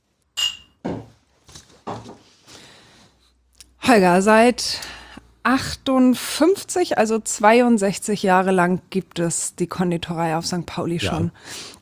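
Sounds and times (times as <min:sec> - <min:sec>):
glasses clinking in a toast: 0:00.4 - 0:00.8
dull thuds and knocks of glasses set down on a table: 0:00.4 - 0:01.1
speech: 0:03.9 - 0:04.9, 0:05.5 - 0:11.8.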